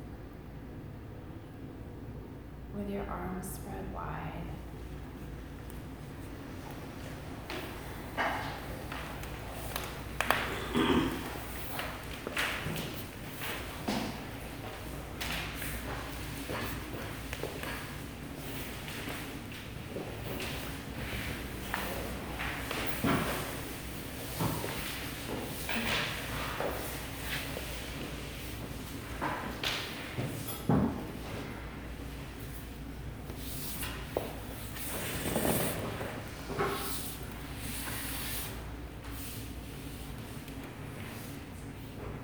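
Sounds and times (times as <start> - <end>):
steady low hum: 0.0 - 42.2
speech: 2.8 - 4.9
footsteps: 5.6 - 38.3
chairs being moved, scraping and bumping: 6.2 - 39.4.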